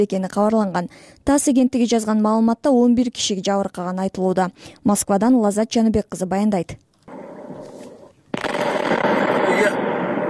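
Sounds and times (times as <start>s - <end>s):
speech: 0.0s - 6.9s
artillery shells and stored mines exploding at a military ammunition depot after a fire: 7.1s - 10.2s.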